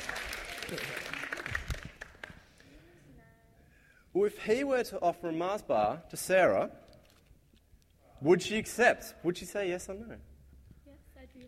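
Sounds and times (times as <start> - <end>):
crowd clapping: 0.0 - 2.7
speech: 0.7 - 1.0, 4.2 - 6.8, 8.2 - 10.3.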